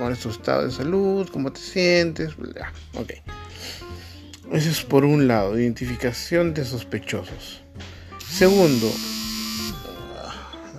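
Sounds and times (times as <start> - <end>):
speech: 0.0 - 3.8, 4.5 - 9.1
harsh steady electronic alarm buzzing: 8.2 - 10.0.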